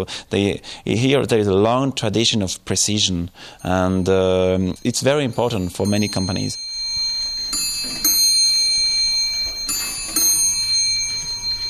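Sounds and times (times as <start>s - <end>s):
speech: 0.0s - 6.7s
pendulum wall clocks chiming the hour: 3.5s - 11.6s.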